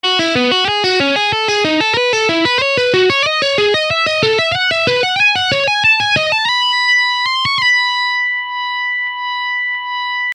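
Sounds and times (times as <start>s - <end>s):
guitar hybrid picking: 0.0s - 10.3s.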